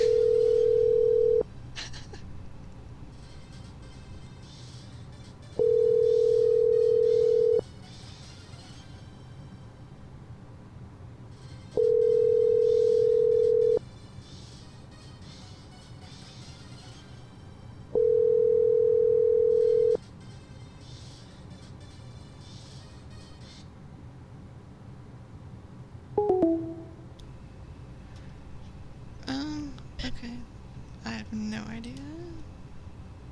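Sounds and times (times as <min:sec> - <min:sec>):
ringback tone on an outgoing phone call: 0:00.0 - 0:01.4, 0:05.6 - 0:07.6, 0:11.8 - 0:13.8, 0:18.0 - 0:20.0, 0:26.2 - 0:27.0.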